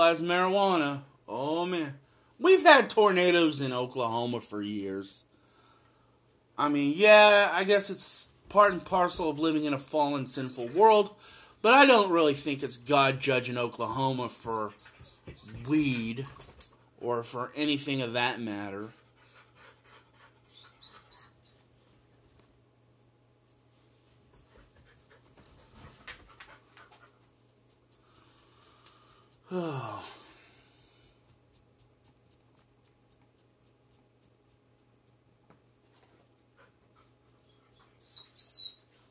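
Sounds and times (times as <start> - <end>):
speech: 0.0 - 5.2, 6.6 - 16.4, 17.0 - 19.0, 29.5 - 30.1
pet dog whining: 10.4 - 11.0, 14.2 - 16.0, 19.2 - 21.8, 37.0 - 39.0
pet dog panting softly: 19.0 - 21.1, 24.4 - 28.4, 36.3 - 38.0.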